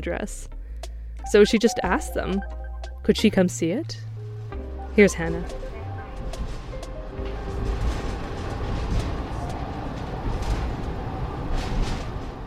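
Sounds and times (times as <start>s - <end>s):
speech: 0.0s - 0.6s, 1.2s - 4.1s, 5.0s - 5.7s
single-car local train running on rails in Shikoku, Japan: 5.0s - 12.4s
train wheels and carriage rattling and clicking: 5.1s - 12.4s.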